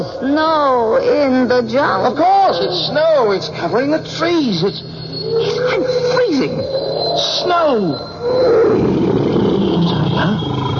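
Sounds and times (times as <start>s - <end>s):
speech: 0.0s - 9.2s, 10.2s - 10.7s
tiger roaring with a gravelly growl: 5.3s - 10.7s.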